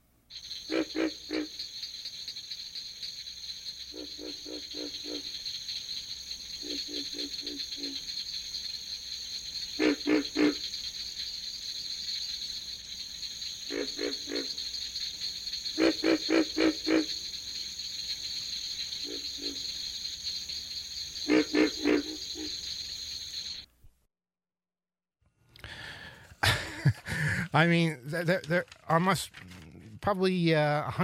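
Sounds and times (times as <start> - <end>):
North American frogs calling in rapid pulsed croaks: 0.3 - 23.7
speech: 7.5 - 8.2, 27.6 - 31.0.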